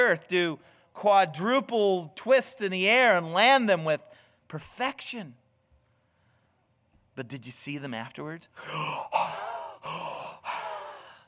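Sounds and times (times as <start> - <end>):
speech: 0.0 - 5.4, 7.2 - 10.1
voice imitating deep exhausted breathing of athletes: 8.6 - 11.2.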